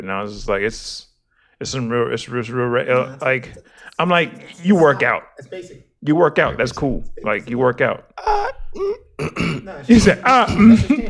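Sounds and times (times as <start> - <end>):
speech: 0.0 - 11.0
person clearing throat: 8.2 - 11.0.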